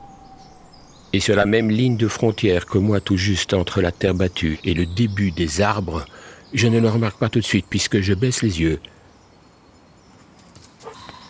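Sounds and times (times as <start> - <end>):
dog whimpering: 0.0 - 0.8
low hiss: 0.0 - 11.2
speech: 1.2 - 9.0
dog barking softly: 10.8 - 11.2.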